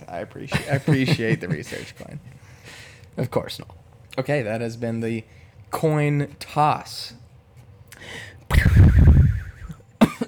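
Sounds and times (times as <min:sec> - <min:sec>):
speech: 0:00.1 - 0:07.2, 0:08.0 - 0:09.4
laughter: 0:00.5 - 0:02.3, 0:08.5 - 0:09.8
person coughing harshly: 0:08.5 - 0:10.2
raspy throat clearing: 0:08.5 - 0:10.2.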